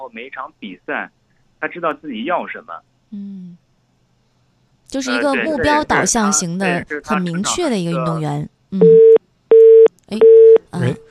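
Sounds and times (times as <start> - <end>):
speech: 0.0 - 3.6, 4.9 - 8.9, 10.1 - 11.0
telephone busy tone after a dropped line: 8.8 - 10.6.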